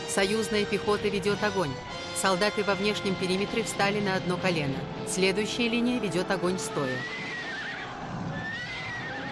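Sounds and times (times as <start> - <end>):
speech: 0.2 - 7.3
horse whinnying: 6.9 - 9.3.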